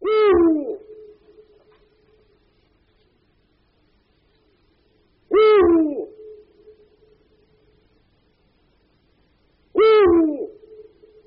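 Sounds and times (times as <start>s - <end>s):
Eurasian eagle-owl hooting: 0.0s - 1.8s, 5.3s - 7.2s, 9.7s - 11.2s.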